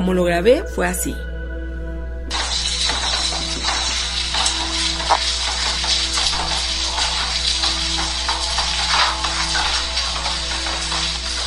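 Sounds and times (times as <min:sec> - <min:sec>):
speech: 0:00.0 - 0:01.3
rain pattering outdoors: 0:02.3 - 0:11.4.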